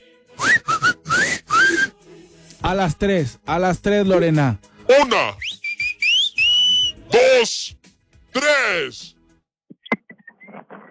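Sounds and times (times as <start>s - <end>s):
woman whistling loudly in short bursts: 0.4s - 1.9s, 5.4s - 7.1s
speech: 2.6s - 5.4s, 7.1s - 7.8s, 8.4s - 9.1s.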